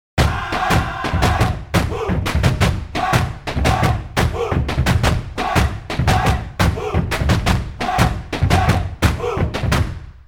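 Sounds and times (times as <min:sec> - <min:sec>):
body percussion: 0:00.2 - 0:10.2.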